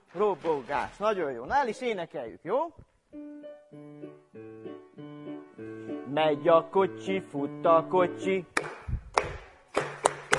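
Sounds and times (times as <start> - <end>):
speech: 0.1 - 4.5, 5.6 - 8.6
hand claps imitating horseshoes clattering: 8.6 - 10.3.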